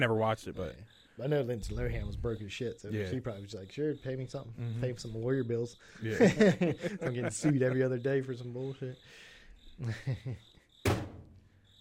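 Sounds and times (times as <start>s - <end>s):
speech: 0.0s - 11.0s
cricket chirping: 0.0s - 11.8s
laughter: 4.2s - 9.0s, 9.8s - 10.4s
sharp thunk: 10.8s - 11.4s.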